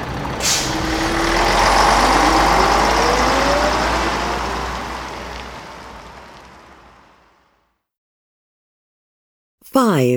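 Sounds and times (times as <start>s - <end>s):
bus engine rumbling on a trip to Uppsala: 0.0s - 7.5s
bus air brakes hissing: 0.4s - 1.1s
speech: 10.0s - 10.1s.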